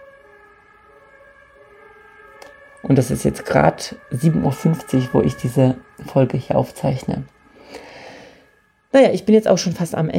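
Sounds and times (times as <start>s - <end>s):
emergency vehicle sirens wailing: 0.0s - 10.1s
speech: 2.8s - 7.8s, 8.9s - 10.1s.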